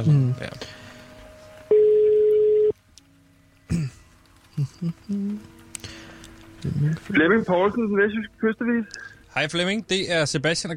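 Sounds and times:
speech: 0.0s - 0.8s, 4.6s - 5.6s, 6.6s - 10.7s
electronic telephone ringback tone: 1.7s - 2.7s.

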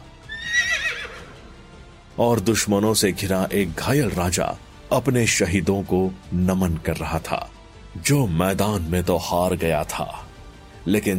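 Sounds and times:
riderless horse neighing on a battlefield: 0.2s - 1.5s
speech: 2.2s - 10.2s, 10.8s - 11.1s.

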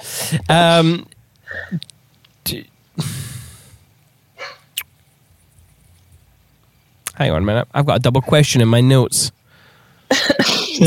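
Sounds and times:
speech: 0.3s - 1.9s, 2.5s - 3.1s, 7.2s - 9.4s, 10.1s - 10.8s
dog yelping loudly: 4.4s - 4.7s.

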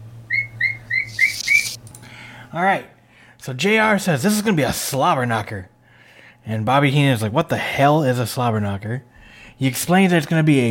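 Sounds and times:
steady low hum: 0.0s - 10.6s
pet bird whistling laugh-like notes: 0.3s - 1.8s
speech: 2.5s - 5.7s, 6.4s - 10.6s.

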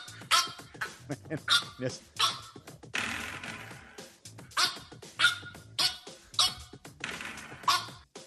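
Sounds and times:
French Bulldog squeaky barking: 0.0s - 0.7s, 1.5s - 2.6s, 4.6s - 6.7s, 7.5s - 8.0s.

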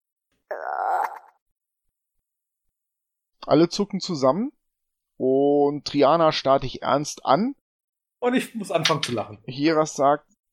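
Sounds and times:
human voice imitating a frog croak: 0.5s - 1.4s
speech: 3.4s - 4.6s, 5.2s - 7.6s, 8.2s - 10.3s.

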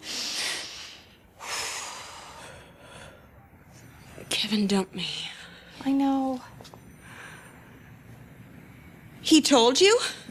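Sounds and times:
long deep forceful breaths in breathing exercise: 0.0s - 4.3s, 6.8s - 9.1s
speech: 4.4s - 6.7s, 9.3s - 10.3s.

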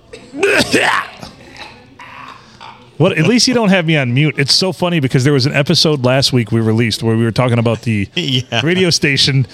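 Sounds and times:
person coughing and hacking: 0.1s - 1.3s
speech: 0.3s - 1.1s, 3.0s - 9.5s.

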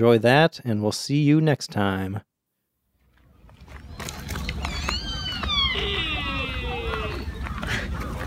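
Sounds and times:
speech: 0.0s - 2.3s
outdoor rustling: 2.5s - 8.2s
deer high wavering bleating call: 4.9s - 7.3s.

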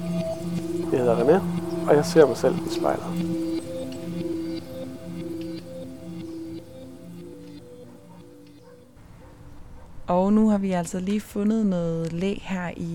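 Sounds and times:
freight train creeping slowly past at a distance: 0.0s - 6.6s
speech: 0.9s - 3.4s, 10.1s - 12.9s.

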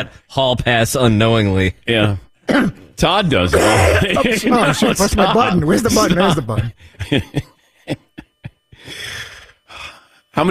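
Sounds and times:
speech: 0.0s - 8.0s, 10.4s - 10.5s
harsh throaty guttural coughs: 3.6s - 4.3s.

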